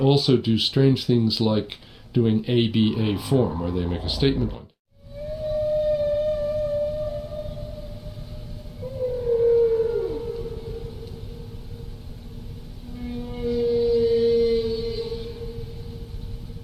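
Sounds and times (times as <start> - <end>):
speech: 0.0 - 4.7
whale song phrase of long moaning tones: 2.8 - 12.0, 12.8 - 16.6.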